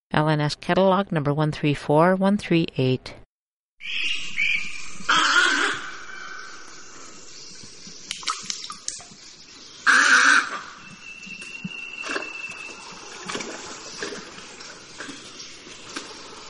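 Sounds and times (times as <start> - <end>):
speech: 0.2 - 3.2, 3.8 - 4.4
Snowy egret Egretta thula harsh raspy croaks: 5.0 - 6.3.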